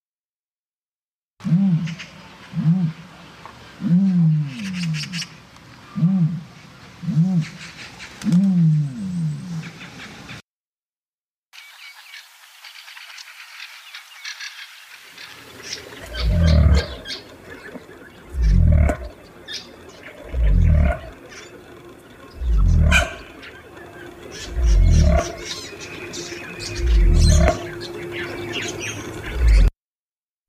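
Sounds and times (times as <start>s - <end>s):
ostrich giving low throaty hooting calls: 1.4s - 3.2s, 3.8s - 9.8s, 15.8s - 29.7s
speech: 1.5s - 3.0s.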